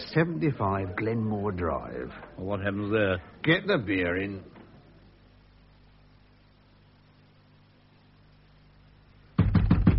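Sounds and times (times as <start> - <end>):
speech: 0.1 - 4.6
knocking on a house door: 9.4 - 9.9.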